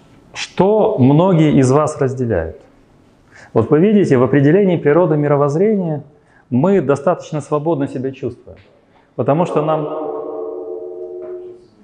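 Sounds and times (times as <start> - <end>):
speech: 0.6 - 2.7, 3.5 - 10.0
ringing echo tone: 9.2 - 11.8.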